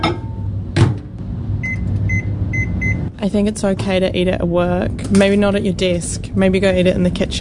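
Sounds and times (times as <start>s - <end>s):
microwave oven running: 0.0s - 3.4s
speech: 3.2s - 7.3s.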